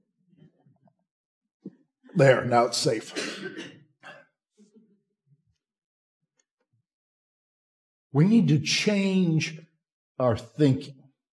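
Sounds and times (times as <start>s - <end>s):
speech: 2.2s - 3.8s, 8.2s - 9.6s, 10.2s - 11.0s
harsh coughs: 3.0s - 4.4s
throat clearing: 3.1s - 4.4s.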